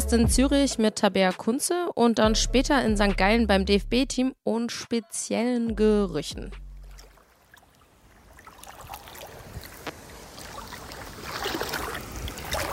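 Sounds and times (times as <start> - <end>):
speech: 0.1 - 6.6
person wading through lake water in Lake Zurich: 6.8 - 12.7.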